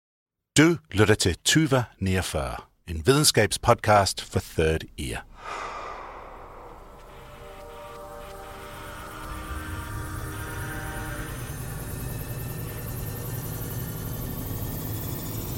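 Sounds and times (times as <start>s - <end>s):
speech: 0.6s - 5.7s
loud rushing surge: 5.4s - 9.9s
stacked sustained tones: 5.4s - 15.0s
layered electronic hum of a time machine sound effect: 5.5s - 15.5s.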